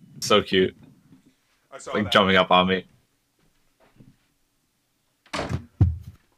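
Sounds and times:
speech: 0:00.2 - 0:00.8, 0:01.7 - 0:02.9
door thudding closed: 0:05.3 - 0:06.2.

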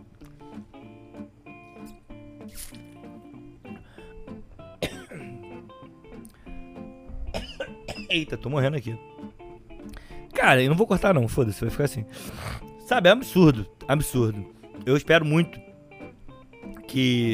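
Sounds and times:
person drinking water: 0:02.5 - 0:03.0
person coughing: 0:04.8 - 0:05.4, 0:07.3 - 0:08.3
throat clearing: 0:04.8 - 0:05.4, 0:07.3 - 0:08.2
speech: 0:08.1 - 0:09.2, 0:10.4 - 0:15.6, 0:16.9 - 0:17.3.

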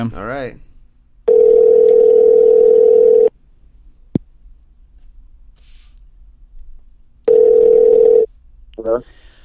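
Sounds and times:
speech: 0:00.0 - 0:00.7, 0:09.0 - 0:09.2
telephone line ringing with steady electronic tone: 0:01.3 - 0:03.3, 0:07.3 - 0:08.3.

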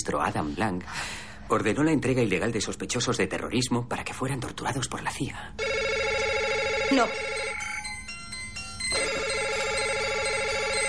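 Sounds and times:
speech: 0:00.0 - 0:05.7, 0:06.9 - 0:07.3
electronic telephone ringtones: 0:05.6 - 0:10.8.

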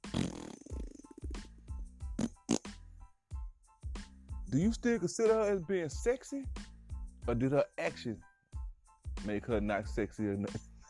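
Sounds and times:
loud sputtering fart noises: 0:00.0 - 0:02.8
speech: 0:04.5 - 0:08.3, 0:09.2 - 0:10.7.

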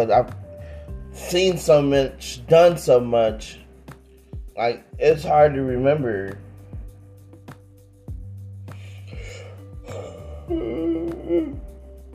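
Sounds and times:
speech: 0:00.0 - 0:00.4, 0:01.2 - 0:03.6, 0:04.6 - 0:06.4
music with soft rhythmic beats: 0:00.0 - 0:12.1
person yawning: 0:08.9 - 0:11.8.

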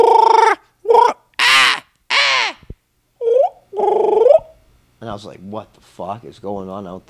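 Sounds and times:
human voice imitating crows cawing: 0:00.0 - 0:04.5
speech: 0:05.1 - 0:07.0.

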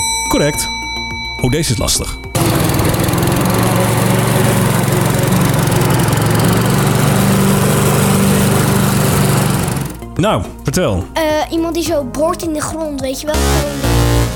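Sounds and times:
speech: 0:00.3 - 0:00.8, 0:01.4 - 0:02.7, 0:10.2 - 0:14.1
lawn mower engine droning: 0:02.4 - 0:10.1.

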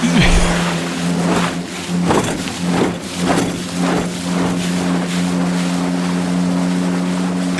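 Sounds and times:
motorboat engine starting and running on water: 0:00.0 - 0:07.5
rushing water: 0:00.0 - 0:07.5.

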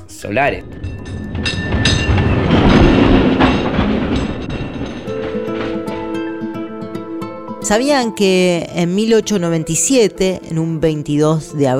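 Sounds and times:
metallic squeal of a tram: 0:00.0 - 0:08.3
tram rolling along its rails with rattling clicks: 0:00.0 - 0:11.7
speech: 0:00.2 - 0:00.8, 0:07.7 - 0:11.7.

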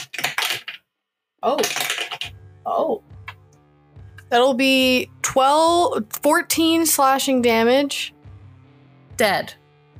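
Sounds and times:
dice rattling across a hard table in a game: 0:00.0 - 0:00.8, 0:01.5 - 0:02.4
speech: 0:01.4 - 0:03.2, 0:04.3 - 0:08.2, 0:09.2 - 0:09.6.

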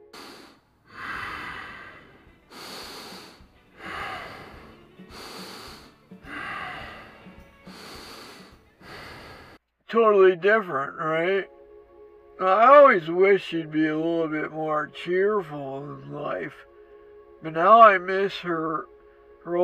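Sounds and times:
heavy raspy snorting breathing while asleep: 0:00.0 - 0:09.6
speech: 0:09.9 - 0:11.5, 0:12.4 - 0:16.7, 0:17.4 - 0:19.6.

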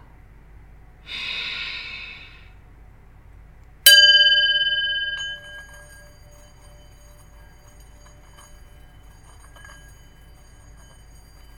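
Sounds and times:
deep breath in and out: 0:01.0 - 0:02.6
bright chime ringing: 0:03.9 - 0:08.6.

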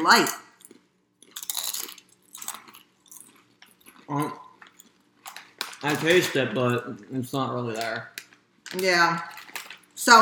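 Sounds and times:
speech: 0:00.0 - 0:00.4, 0:04.1 - 0:04.4, 0:05.8 - 0:09.4, 0:10.0 - 0:10.2
crunching raspberry-flavoured potato chips: 0:00.6 - 0:06.8.

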